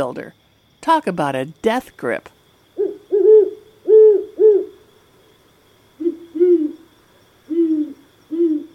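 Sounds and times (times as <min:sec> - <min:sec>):
speech: 0:00.0 - 0:02.4
great horned owl hooting: 0:02.7 - 0:04.9, 0:05.9 - 0:08.7.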